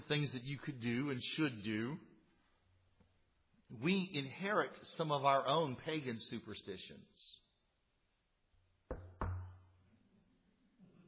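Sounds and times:
speech: 0.1s - 2.1s, 3.7s - 7.4s
knocking on a wooden surface: 8.9s - 9.6s.

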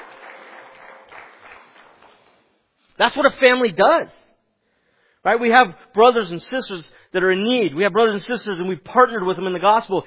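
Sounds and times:
church congregation applause: 0.0s - 2.5s
speech: 3.0s - 4.2s, 5.2s - 10.0s.

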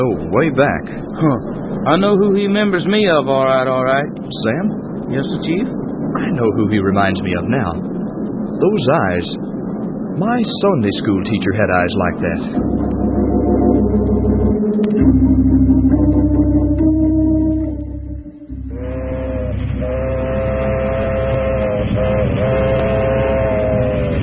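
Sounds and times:
speech: 0.0s - 9.6s, 10.2s - 13.1s
train rumbling on the track: 0.0s - 24.2s
train horn wailing in long sustained chords: 15.8s - 24.2s.

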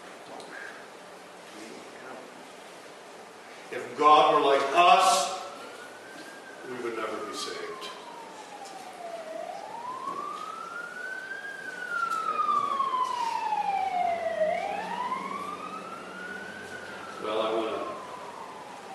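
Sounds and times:
traffic hum: 3.1s - 18.9s
speech: 3.7s - 5.3s
emergency vehicle siren wailing: 3.8s - 18.9s.

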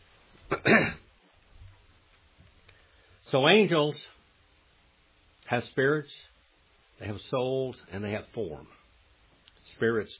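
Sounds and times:
speech: 0.5s - 1.0s, 3.3s - 4.2s, 5.5s - 6.3s, 7.0s - 8.8s, 9.7s - 10.1s
throat clearing with a cough: 0.5s - 1.1s.

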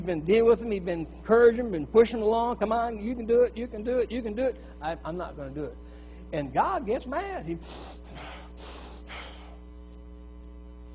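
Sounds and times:
speech: 0.0s - 8.7s
low steady hum: 0.0s - 10.9s
angry heavy breathing through flared nose: 7.6s - 9.6s
forceful snorting exhales: 7.7s - 9.6s.

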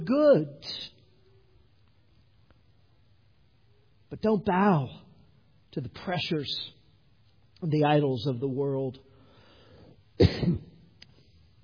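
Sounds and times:
speech: 0.1s - 0.9s, 4.1s - 5.0s, 5.8s - 6.8s, 7.6s - 9.0s, 10.2s - 10.7s
rough throaty cough: 10.2s - 10.8s.

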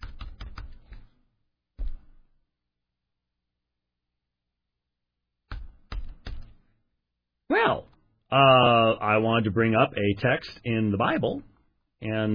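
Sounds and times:
typing on a computer keyboard: 0.0s - 1.1s, 5.5s - 6.6s
speech: 7.5s - 12.3s.

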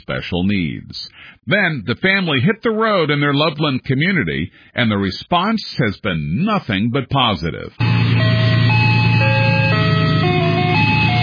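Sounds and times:
speech: 0.0s - 7.9s
low engine hum: 7.8s - 11.2s
tinny ice cream truck jingle from a family-run ice cream truck: 7.8s - 11.2s.

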